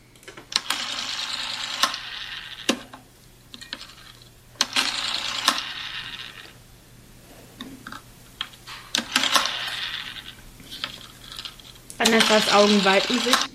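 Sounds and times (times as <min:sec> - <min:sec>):
rotary dial telephone dial whirring back with ratcheting clicks: 0:00.0 - 0:03.0, 0:03.6 - 0:06.7, 0:07.6 - 0:13.5
speech: 0:12.2 - 0:13.5.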